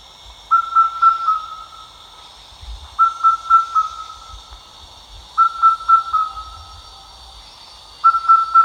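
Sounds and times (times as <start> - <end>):
steady high background drone: 0.0 - 8.6
Indian cuckoo giving four-note whistled phrase: 0.5 - 2.0, 3.0 - 4.5, 5.4 - 8.6.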